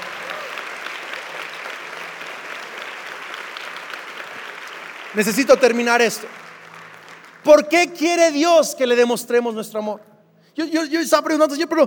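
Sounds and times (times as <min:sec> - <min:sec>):
audience clapping loudly: 0:00.0 - 0:08.4
speech: 0:05.1 - 0:06.4, 0:07.4 - 0:11.8.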